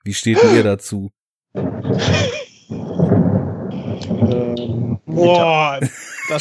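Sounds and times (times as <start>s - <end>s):
speech: 0.0s - 6.3s
deep rolling rumble of thunder: 1.6s - 5.8s
laughter: 2.0s - 2.8s, 4.5s - 6.3s.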